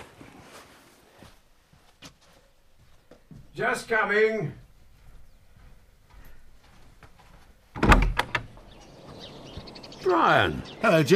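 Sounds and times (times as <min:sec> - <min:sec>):
speech: 0:03.6 - 0:04.6, 0:10.1 - 0:11.1
front door opening: 0:07.7 - 0:10.0
door latch rattling knocks: 0:07.8 - 0:08.7.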